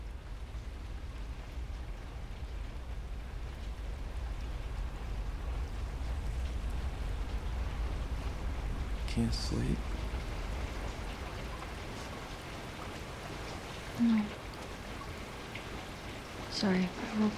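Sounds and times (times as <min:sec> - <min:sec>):
low rumble: 0:00.0 - 0:14.6
steady rain pouring against window glass: 0:00.0 - 0:17.3
speech: 0:09.2 - 0:10.0, 0:16.6 - 0:17.3.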